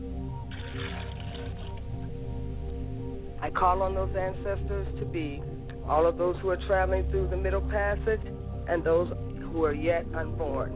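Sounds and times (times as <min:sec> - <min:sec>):
low musical drone: 0:00.0 - 0:10.7
water poured out as a libation to the south: 0:00.4 - 0:02.1
speech: 0:03.4 - 0:10.7.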